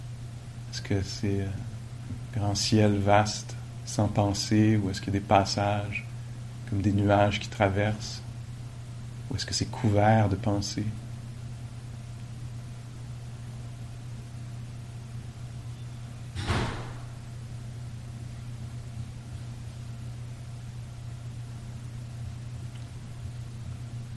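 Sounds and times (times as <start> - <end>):
low electrical hum: 0.0 - 24.1
speech: 0.7 - 6.1, 6.7 - 8.2, 9.3 - 11.0
door banging shut: 16.4 - 17.2.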